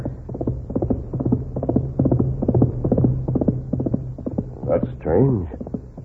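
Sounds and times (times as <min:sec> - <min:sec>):
horse galloping hooves: 0:00.0 - 0:06.0
low hum: 0:00.0 - 0:06.0
speech: 0:05.2 - 0:05.6.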